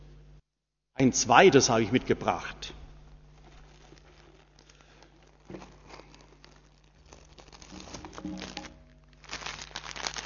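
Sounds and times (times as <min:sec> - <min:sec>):
speech: 0:01.0 - 0:02.8
plastic bag of soil crinkling while being opened: 0:03.2 - 0:10.2.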